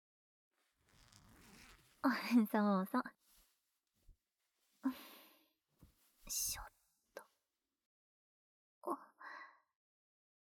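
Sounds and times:
zipper on back of dress being pulled down: 0.6s - 2.4s
speech: 2.0s - 3.2s, 6.3s - 6.7s.

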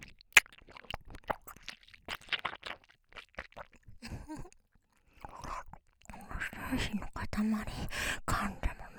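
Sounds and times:
person chewing food while eating: 0.0s - 6.2s
speech: 6.7s - 8.6s.

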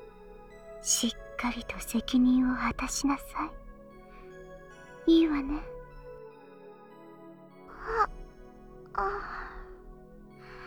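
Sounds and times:
speech: 0.8s - 3.6s, 5.0s - 5.7s, 9.0s - 9.4s
woman yawning: 7.7s - 8.2s, 9.0s - 9.7s
yawn-like sigh: 9.0s - 9.8s.

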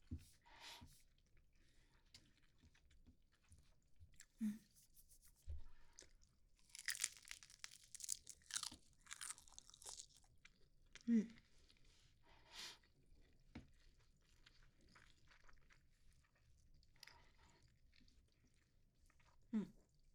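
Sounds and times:
crunching and chewing nori-wrapped rice: 1.8s - 4.4s, 5.9s - 11.9s, 12.8s - 20.1s.

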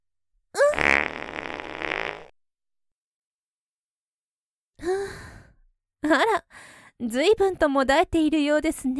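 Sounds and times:
long sputtering fart: 0.6s - 2.3s
speech: 6.1s - 6.4s, 7.0s - 8.9s.

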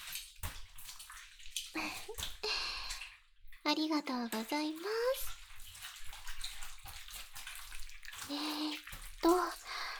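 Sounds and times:
shower water streaming with a broad hiss: 0.0s - 9.9s
speech: 3.7s - 5.4s, 8.3s - 8.5s.

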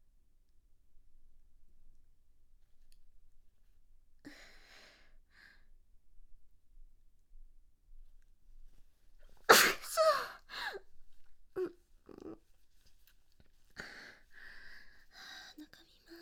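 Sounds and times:
person sneezing: 9.5s - 10.8s
breathy gasps and sniffles: 9.8s - 10.8s, 13.8s - 15.6s.

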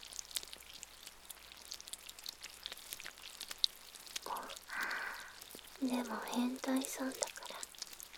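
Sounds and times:
steady rain pattering: 0.0s - 8.1s
breathy swell: 4.3s - 5.4s
speech: 5.8s - 7.4s.

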